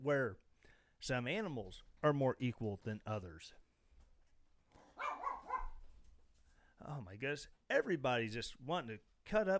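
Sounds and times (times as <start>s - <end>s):
speech: 0.0s - 0.4s, 1.0s - 3.6s, 6.8s - 9.5s
small dog yapping: 4.8s - 5.8s.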